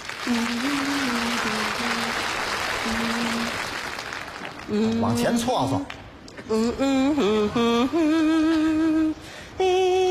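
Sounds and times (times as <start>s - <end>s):
dense crowd applause: 0.0s - 5.6s
speech: 4.7s - 8.8s.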